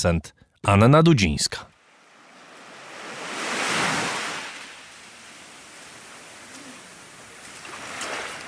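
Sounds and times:
speech: 0.0s - 1.7s
Caribbean Sea waves washing onto the shore: 1.8s - 8.4s.

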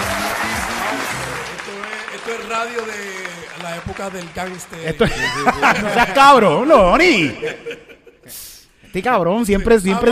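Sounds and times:
crowd applause: 0.0s - 6.4s
laughter: 0.0s - 8.4s
speech: 2.4s - 10.1s.

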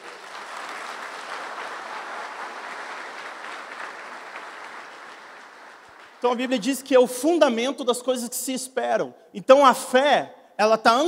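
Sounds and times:
audience applauding during a sermon: 0.0s - 6.6s
speech: 6.2s - 11.0s.

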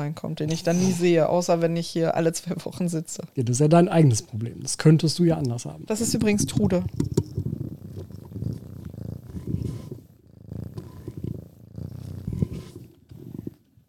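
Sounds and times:
speech: 0.0s - 7.2s
cat purring: 4.3s - 13.8s.

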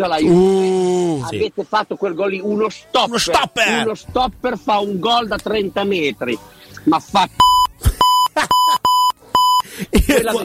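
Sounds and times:
speech: 0.0s - 7.5s, 9.9s - 10.4s
voices and chatter: 0.0s - 10.4s
loud sharp electronic beeps at a steady pitch: 7.4s - 9.6s
laughter: 7.8s - 9.0s, 9.7s - 10.4s.

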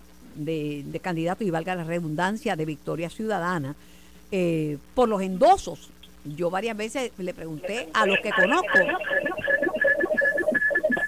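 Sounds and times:
speech: 0.4s - 9.2s
electronic tones buzzing and warbling over a phone line: 6.8s - 11.0s
garbled voice-like chatter: 7.3s - 11.0s.

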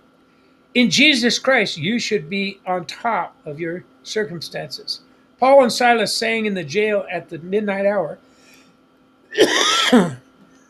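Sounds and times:
speech: 0.7s - 8.3s, 9.3s - 10.2s
coughing and throat clearing: 9.3s - 10.2s.

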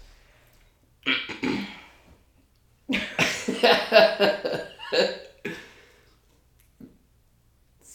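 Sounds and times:
person getting over a cold coughing after drinking water: 1.1s - 1.8s
speech: 4.0s - 5.1s.

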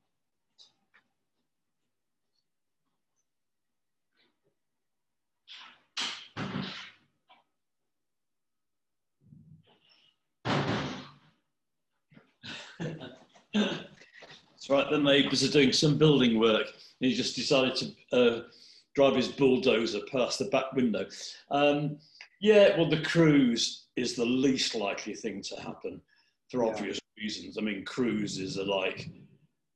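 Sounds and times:
back door being shut: 10.4s - 11.2s
speech: 14.7s - 29.3s.

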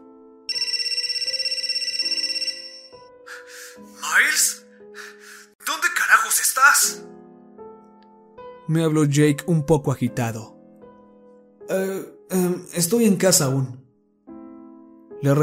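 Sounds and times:
soft music: 0.0s - 15.4s
mobile phone ringing: 0.5s - 3.0s
breathy gasp-like bursts: 3.3s - 4.0s, 4.7s - 5.6s
speech: 3.8s - 5.1s, 5.7s - 7.2s, 8.7s - 10.6s, 11.7s - 13.8s, 15.2s - 15.4s.

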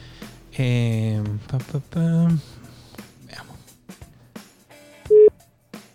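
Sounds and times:
speech: 0.6s - 2.6s
electronic phone tones as a call is placed: 5.1s - 5.4s.

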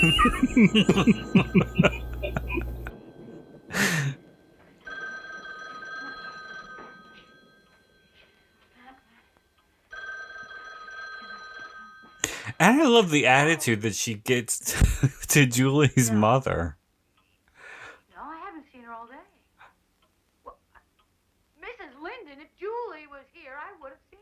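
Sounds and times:
speech: 0.0s - 2.0s, 12.6s - 16.8s
chuckling laughter: 0.0s - 2.9s
telephone ringing in long electronic bursts: 0.0s - 13.2s.

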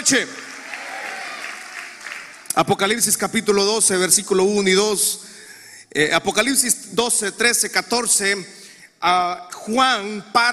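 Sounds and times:
audience clapping: 0.0s - 3.2s
speech: 0.1s - 0.5s, 2.6s - 5.3s, 5.9s - 10.5s
audience cheering with shouted voices: 0.4s - 2.4s.

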